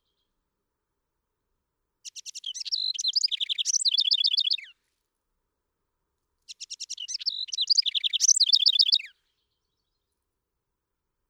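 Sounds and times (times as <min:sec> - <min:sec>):
House wren song: 0:02.0 - 0:04.8, 0:06.5 - 0:09.1.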